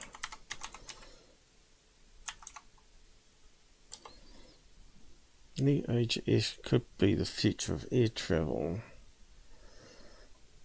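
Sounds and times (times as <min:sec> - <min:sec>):
quiet typing on a computer keyboard: 0:00.0 - 0:01.1, 0:02.2 - 0:02.7
speech: 0:05.6 - 0:08.9.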